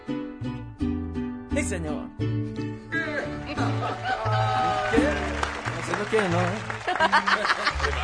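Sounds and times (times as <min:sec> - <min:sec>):
rhythmic music-like backing: 0:00.0 - 0:08.0
speech: 0:01.6 - 0:08.0
people clapping: 0:03.4 - 0:08.0
laughter: 0:06.8 - 0:08.0.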